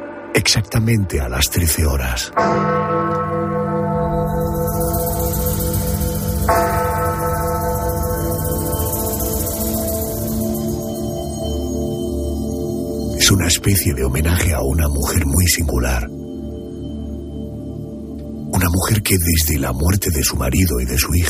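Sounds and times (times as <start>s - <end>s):
speech: 0.4s - 3.0s, 13.3s - 16.2s, 18.5s - 21.2s
large church bells tolling: 1.7s - 15.2s.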